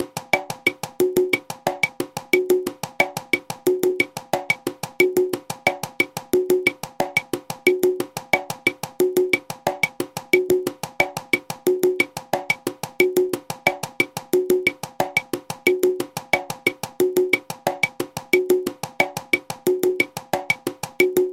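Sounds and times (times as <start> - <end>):
son montuno clave: 0.0 - 21.3
son montuno conga: 0.0 - 21.3.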